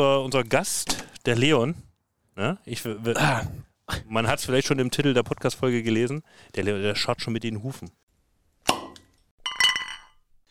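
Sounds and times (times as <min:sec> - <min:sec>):
speech: 0:00.0 - 0:08.0
glasses clinking in a toast: 0:08.8 - 0:10.3.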